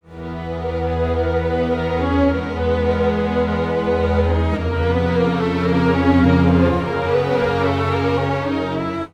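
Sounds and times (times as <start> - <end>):
pitch-shifted strings: 0.3 - 9.1.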